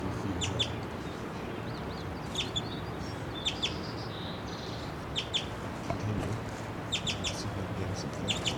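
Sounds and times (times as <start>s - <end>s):
outdoor hiss: 0.0s - 8.5s
small male bird chittering on the ground: 0.3s - 5.5s, 6.9s - 7.5s, 8.2s - 8.5s.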